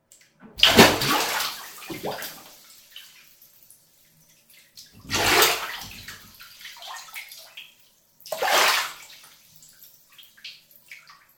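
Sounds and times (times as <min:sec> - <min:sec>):
big splashes playing with bath water: 0:00.6 - 0:03.5, 0:04.8 - 0:07.7, 0:08.3 - 0:11.1.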